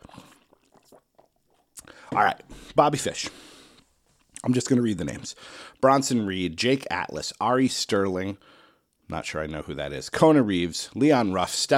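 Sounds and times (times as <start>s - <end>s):
swallowing: 0.0s - 2.8s
person sipping water: 0.0s - 4.5s
speech: 2.1s - 3.5s, 4.4s - 11.7s.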